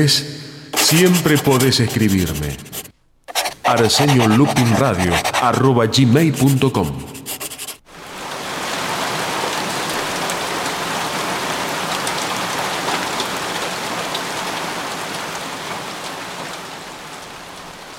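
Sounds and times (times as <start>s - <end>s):
speech: 0.0s - 2.8s, 3.7s - 7.1s
steady dense rain falling on a surface: 7.9s - 17.9s.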